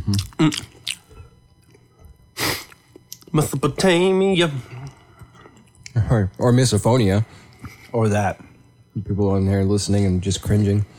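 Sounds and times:
person chewing pizza: 0.0 - 3.3, 4.8 - 6.0
speech: 0.1 - 0.7, 3.4 - 4.8, 6.0 - 10.9.

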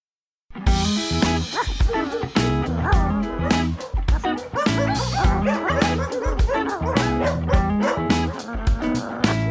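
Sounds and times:
dog barking rapidly: 1.5 - 8.5
dog's high-pitched whimpers and yips: 1.6 - 9.5.

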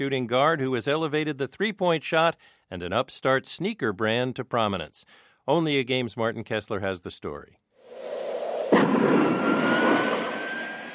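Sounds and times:
speech: 0.0 - 8.3
jet engine roaring with a high whine as a jet takes off: 7.9 - 10.9.

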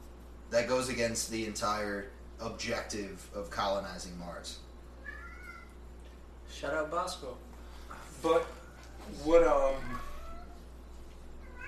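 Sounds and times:
low steady hum: 0.0 - 11.6
speech: 0.5 - 4.7, 6.5 - 7.5, 8.2 - 10.1
faint meowing from a pet cat: 4.9 - 5.8, 8.9 - 10.7, 11.4 - 11.6.

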